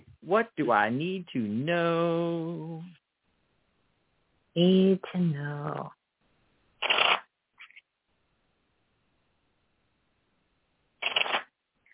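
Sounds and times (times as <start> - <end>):
speech: 0.2 - 3.0, 4.6 - 6.0
tarot cards being shuffled: 6.8 - 7.8, 11.0 - 11.9.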